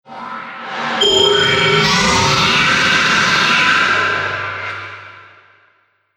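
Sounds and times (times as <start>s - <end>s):
futuristic engine activating: 1.0s - 4.8s.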